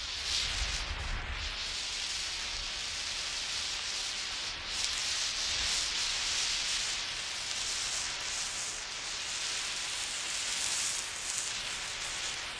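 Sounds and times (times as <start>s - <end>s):
flare burning: 0.0s - 12.5s.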